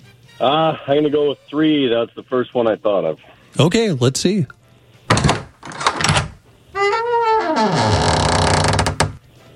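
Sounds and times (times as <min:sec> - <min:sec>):
speech: 0:00.4 - 0:04.6
door creaking open with a long wavering groan: 0:05.1 - 0:09.2.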